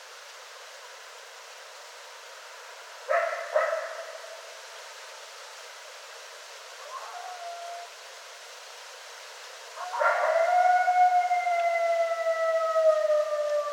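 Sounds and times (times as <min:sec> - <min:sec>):
coyote yips and howls: 0:06.8 - 0:08.0, 0:09.8 - 0:13.7.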